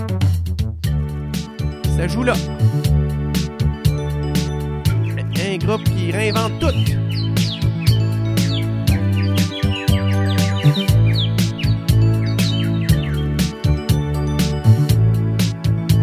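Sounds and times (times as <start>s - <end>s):
upbeat French pop instrumental recording: 0.0s - 16.0s
speech: 2.0s - 3.0s, 5.6s - 7.0s
bright chirping bird-like sounds in pop music: 4.9s - 13.6s.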